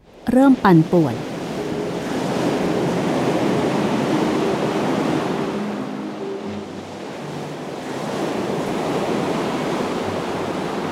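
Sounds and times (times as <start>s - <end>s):
heavy ocean surf rumbling and churning: 0.0s - 10.9s
speech: 0.2s - 1.3s.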